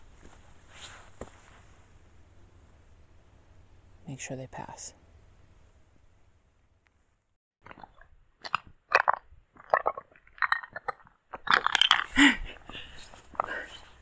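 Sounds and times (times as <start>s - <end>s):
speech: 4.2s - 5.0s
brittle rock crunching as it breaks apart and slides down a slope: 7.6s - 13.8s.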